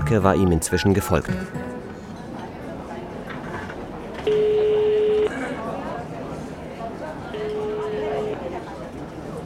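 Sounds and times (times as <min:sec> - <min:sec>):
phone ringing tone on the line, long steady electronic beeps: 0:00.0 - 0:01.6, 0:04.3 - 0:05.3, 0:07.4 - 0:08.4
murmur of noise: 0:00.0 - 0:09.4
speech: 0:00.1 - 0:01.7.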